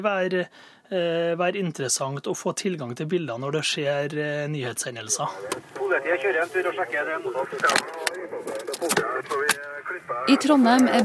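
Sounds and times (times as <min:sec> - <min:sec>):
speech: 0:00.0 - 0:11.0
police radio voices chattering inside a car in Trondheim: 0:05.2 - 0:11.0.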